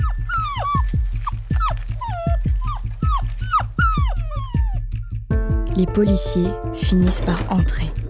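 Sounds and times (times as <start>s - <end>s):
dog whining and yelping outside a pastry shop: 0.0s - 5.3s
speech: 5.8s - 8.0s.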